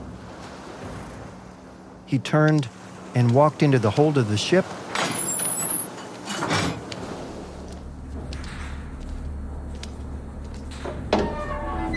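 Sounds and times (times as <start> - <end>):
ocean surf: 0.0 - 8.2
speech: 2.1 - 4.8.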